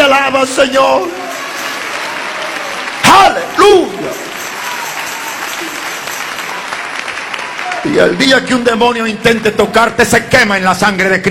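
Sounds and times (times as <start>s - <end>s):
speech: 0.2s - 1.2s, 3.1s - 4.3s, 7.8s - 11.2s
audience applauding: 0.8s - 8.8s
man shouting: 3.0s - 4.1s.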